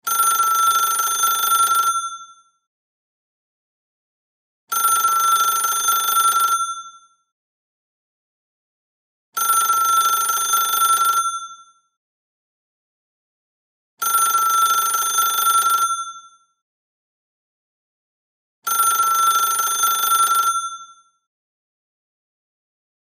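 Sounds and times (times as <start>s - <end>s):
antique electronic telephone ringing: 0.1s - 2.3s, 4.7s - 7.0s, 9.4s - 11.7s, 14.0s - 16.4s, 18.7s - 21.0s.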